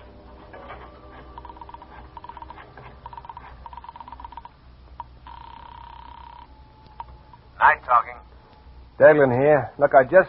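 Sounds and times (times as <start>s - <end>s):
mechanical telephone dialing clicks in a hall: 1.4s - 7.1s
speech: 7.6s - 8.3s, 9.0s - 10.2s.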